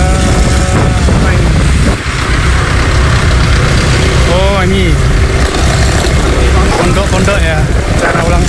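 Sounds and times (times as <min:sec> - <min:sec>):
idling vehicle engines rumbling in a traffic jam, played from a video: 0:00.0 - 0:08.4.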